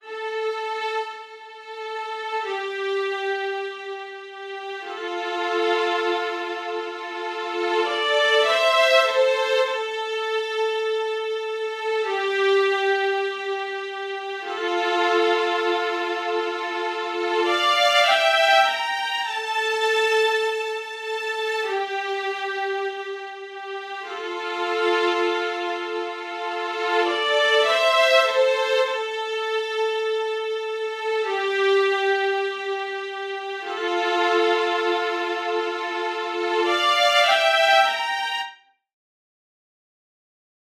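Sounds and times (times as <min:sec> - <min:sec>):
violin strings: 0:00.0 - 0:38.6.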